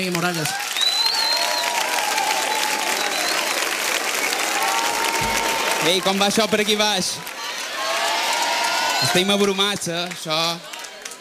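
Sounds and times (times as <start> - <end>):
speech: 0.0 - 0.7, 5.8 - 7.3, 9.0 - 10.7
large audience applauding loudly: 0.0 - 11.1
faint whistles and cheers: 0.4 - 6.7, 7.4 - 9.6.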